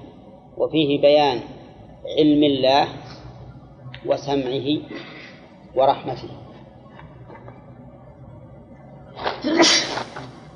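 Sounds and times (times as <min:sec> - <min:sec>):
speech: 0:00.6 - 0:03.0, 0:04.0 - 0:05.1, 0:05.8 - 0:06.4
person sneezing: 0:09.4 - 0:10.1.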